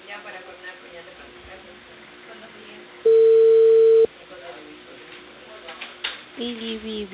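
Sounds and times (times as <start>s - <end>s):
steady low-pitched telephone beep: 3.1s - 4.1s.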